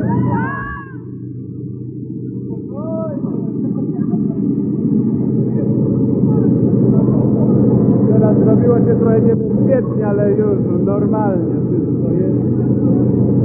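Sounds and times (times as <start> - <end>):
airplane engine drone in cabin during flight: 0.0 - 13.4
laughter: 2.6 - 12.4
speech: 8.8 - 11.8.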